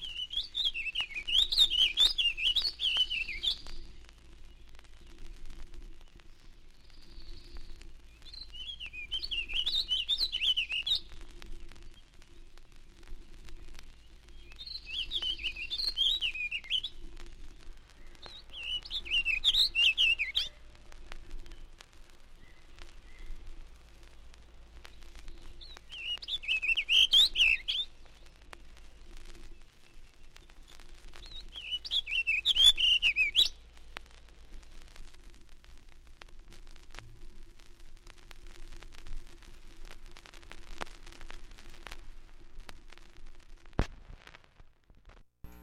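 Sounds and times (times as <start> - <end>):
warbling vireo singing warbled phrases: 0.0 - 5.1, 6.3 - 11.2, 14.0 - 20.6, 24.9 - 28.3, 29.0 - 33.6.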